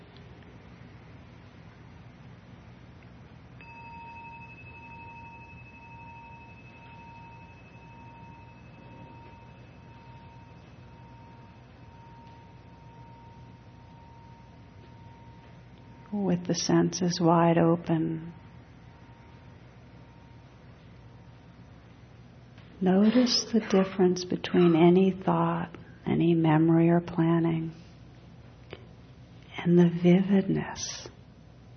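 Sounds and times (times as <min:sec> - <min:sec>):
bell ringing: 0:03.6 - 0:15.6
speech: 0:16.1 - 0:18.4, 0:22.8 - 0:27.8, 0:29.6 - 0:31.2.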